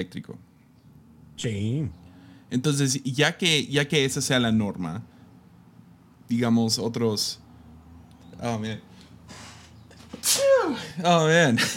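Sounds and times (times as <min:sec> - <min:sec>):
speech: 0:00.0 - 0:00.5, 0:01.4 - 0:05.1, 0:06.3 - 0:07.4, 0:08.4 - 0:09.4, 0:10.6 - 0:11.7
person sneezing: 0:09.3 - 0:11.0.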